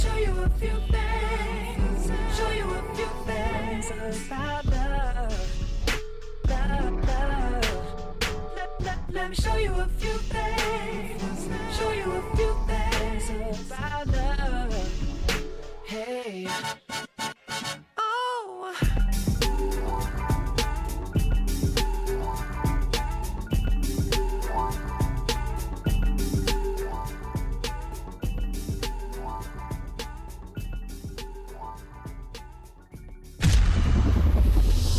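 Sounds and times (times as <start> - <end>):
pop song playing: 0.0 - 33.5
speech: 9.2 - 11.1
burst of noisy sound: 33.4 - 34.9.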